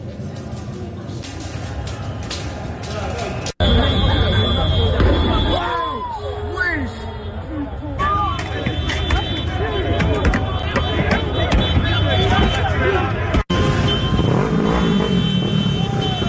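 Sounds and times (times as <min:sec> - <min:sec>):
engines and traffic rumbling: 0:00.0 - 0:16.2
dense crowd shouting and clamoring in a street riot: 0:01.8 - 0:13.6, 0:15.6 - 0:16.2.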